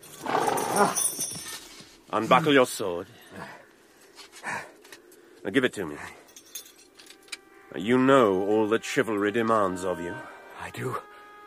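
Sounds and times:
horse whinnying: 0:00.2 - 0:01.2
speech: 0:00.8 - 0:01.0, 0:02.1 - 0:03.6, 0:05.4 - 0:06.2, 0:07.7 - 0:11.1.

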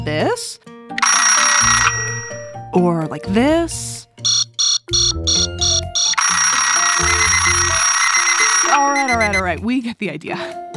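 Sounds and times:
speech: 0:00.0 - 0:01.0, 0:02.8 - 0:04.1, 0:08.8 - 0:10.6
bell-type alarm clock ringing: 0:01.0 - 0:02.6, 0:04.3 - 0:09.4.

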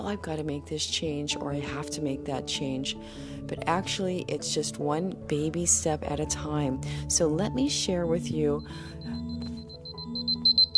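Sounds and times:
speech: 0:00.0 - 0:09.5
alarm going off with high-pitched beeps: 0:08.5 - 0:10.7.

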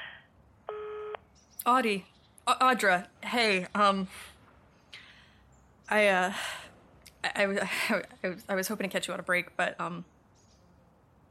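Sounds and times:
voicemail beep: 0:00.7 - 0:01.2
speech: 0:01.6 - 0:04.3, 0:05.9 - 0:06.6, 0:07.2 - 0:10.1.

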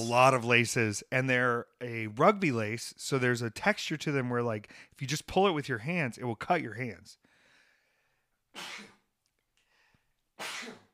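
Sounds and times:
speech: 0:00.0 - 0:07.2, 0:08.6 - 0:08.9
quiet breathing: 0:07.2 - 0:08.4, 0:09.6 - 0:10.2
person sneezing: 0:08.5 - 0:09.1, 0:10.4 - 0:10.9.

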